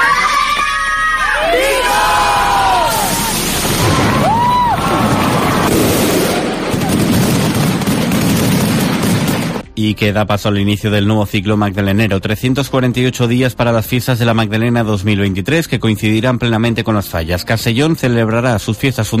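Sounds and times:
festival queens shouting in unison in high-pitched cries: 0:00.0 - 0:05.3
crowd cheering: 0:00.0 - 0:08.6
speech: 0:09.8 - 0:19.1.

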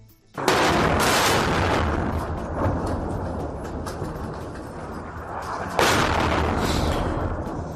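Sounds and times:
heavy explosive blasts of bombardment: 0:00.4 - 0:07.7.

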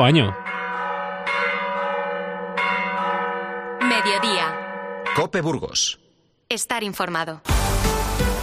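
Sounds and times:
speech: 0:00.0 - 0:00.4, 0:05.2 - 0:08.3
church bells ringing: 0:00.0 - 0:05.9.

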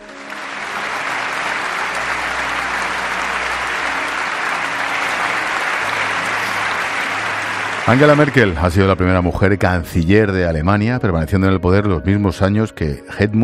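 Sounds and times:
large crowd applauding in the German parliament: 0:00.0 - 0:09.5
speech: 0:07.9 - 0:13.4.

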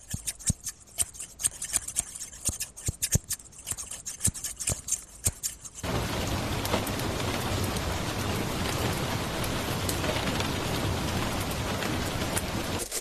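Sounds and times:
sharp crisp snipping clicks: 0:00.0 - 0:05.9
brighter scattered tapping: 0:00.0 - 0:07.8
steady dense rain hissing: 0:05.8 - 0:12.9.

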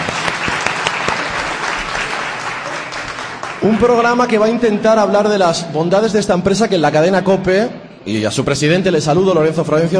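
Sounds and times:
sharper individual claps: 0:00.0 - 0:03.9
room full of people applauding: 0:00.0 - 0:04.7
speech: 0:03.6 - 0:09.9.

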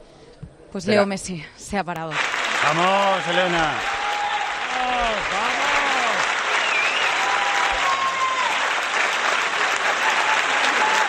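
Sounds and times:
speech: 0:00.7 - 0:04.0, 0:04.8 - 0:05.6
large audience applauding: 0:02.1 - 0:11.0
faint whistles from audience: 0:06.6 - 0:07.2.

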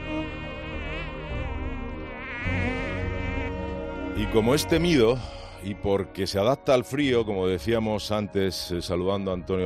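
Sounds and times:
tiger mosquito buzzing: 0:00.0 - 0:06.7
speech: 0:04.2 - 0:09.6.

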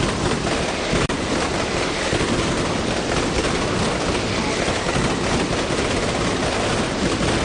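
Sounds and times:
mascletà firecracker barrage explosions: 0:00.0 - 0:07.4.

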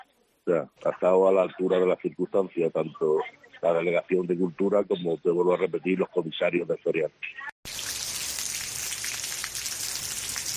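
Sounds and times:
speech: 0:00.5 - 0:07.5
steady heavy rain falling over a city: 0:07.7 - 0:10.5.

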